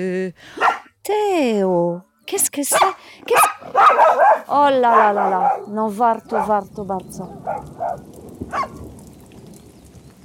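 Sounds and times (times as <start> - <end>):
speech: 0.0 - 8.8
rain falling in a soft steady patter: 3.1 - 10.2.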